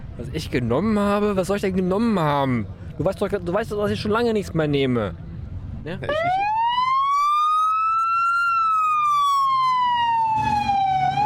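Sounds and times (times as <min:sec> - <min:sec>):
road noise rumble: 0:00.0 - 0:11.2
speech: 0:00.2 - 0:05.2, 0:05.8 - 0:06.6
Houston police car siren driving past across a square: 0:06.1 - 0:11.2.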